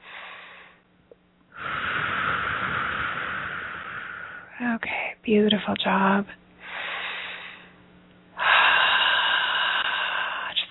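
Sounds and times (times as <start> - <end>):
deep breath taken during a guided relaxation: 0.0 - 0.9, 1.5 - 4.6, 6.6 - 7.8, 8.4 - 10.6
speech: 4.6 - 6.4.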